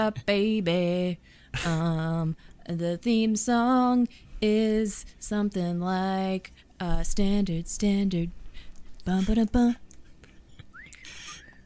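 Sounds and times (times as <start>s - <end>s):
speech: 0.0s - 8.4s, 9.0s - 9.8s
thin wavering whistle tone: 10.7s - 11.6s
breathy hissing of several people attempting to whistle: 11.0s - 11.5s.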